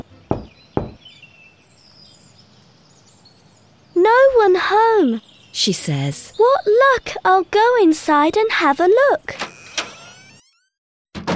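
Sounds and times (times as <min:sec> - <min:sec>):
faint birdsong: 0:00.0 - 0:09.3
firm hollow knocks on a wooden door: 0:00.3 - 0:01.0
speech: 0:04.7 - 0:09.5.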